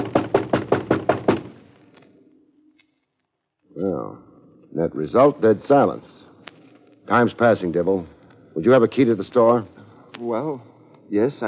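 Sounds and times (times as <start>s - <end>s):
forceful banging on a door: 0.0s - 1.6s
speech: 4.8s - 6.2s, 7.1s - 11.4s.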